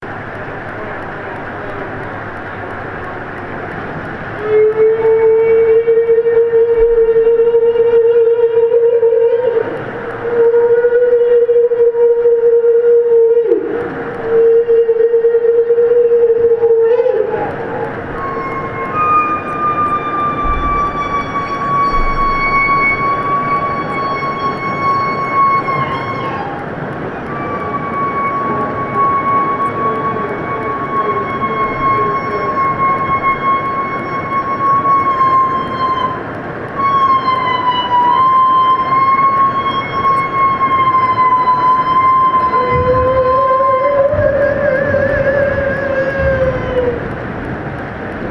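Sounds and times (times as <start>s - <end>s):
humpback whale calls: 0.4s - 48.2s.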